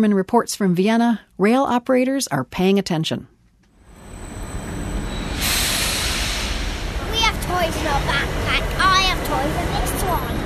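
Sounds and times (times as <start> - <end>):
speech: 0.0 - 3.4, 7.6 - 10.4
steady rumble of the station: 3.8 - 10.4
electric train brakes screeching to a halt: 4.0 - 7.0
burst of hissing air from an electric train: 5.0 - 7.7.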